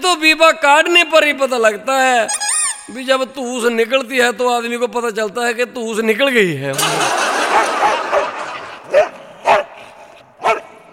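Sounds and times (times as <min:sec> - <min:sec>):
speech: 0:00.0 - 0:08.0
dog yipping: 0:02.3 - 0:03.0
laughter: 0:06.7 - 0:09.0
dog barking: 0:07.5 - 0:09.8, 0:10.4 - 0:10.9.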